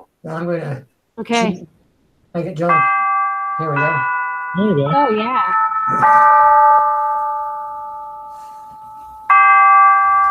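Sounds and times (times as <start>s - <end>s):
speech: 0.2s - 3.0s, 3.6s - 6.7s
clear ringing bell chime notes from a recording of clock chimes: 2.4s - 10.2s.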